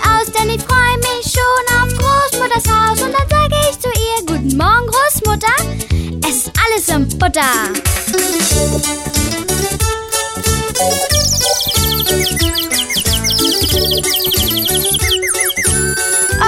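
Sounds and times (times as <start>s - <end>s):
music: 0.0s - 16.4s
small bird chirping in high bursts: 11.0s - 16.4s.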